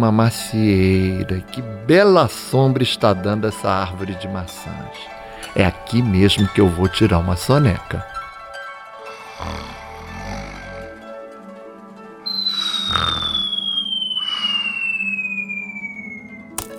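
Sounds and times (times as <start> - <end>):
speech: 0.0 - 8.1, 9.4 - 9.8
cartoon-style falling whistle gliding downward: 12.2 - 16.6.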